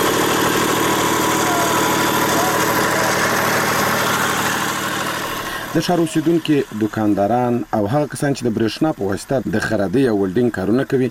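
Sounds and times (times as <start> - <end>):
small generators running to power shops in Lashkar Gah: 0.0 - 7.9
speech: 5.8 - 11.1.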